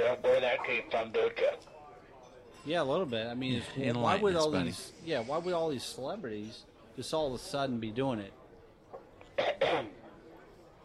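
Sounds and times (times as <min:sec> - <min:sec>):
speech: 0:00.0 - 0:01.7, 0:02.6 - 0:08.4, 0:09.4 - 0:10.0
raspy throat clearing: 0:09.2 - 0:10.1.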